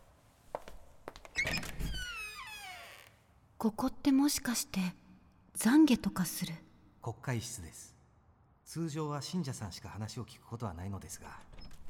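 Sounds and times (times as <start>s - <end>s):
creaking hinges of a church door: 1.3s - 3.2s
speech: 3.6s - 5.0s, 5.6s - 8.0s, 8.7s - 11.6s.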